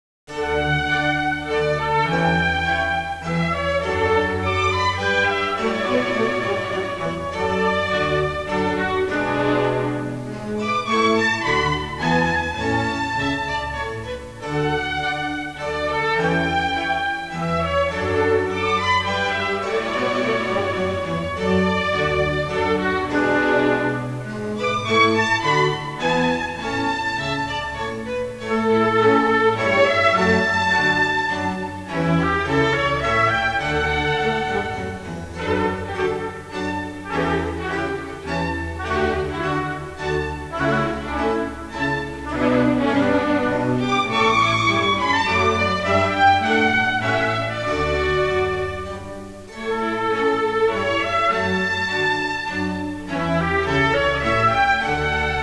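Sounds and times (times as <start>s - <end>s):
baroque classical music: 0.3s - 55.4s.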